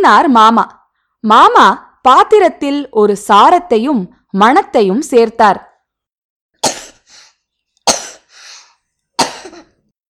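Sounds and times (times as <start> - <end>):
speech: 0.0 - 5.7
girl coughing from throat irritation by a strong smell: 6.6 - 7.1, 7.9 - 8.3, 9.2 - 9.8.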